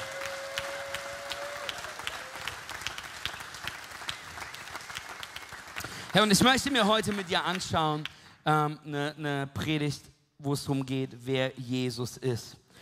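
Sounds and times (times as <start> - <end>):
audience applauding a team: 0.0 - 7.7
speech: 6.1 - 12.6.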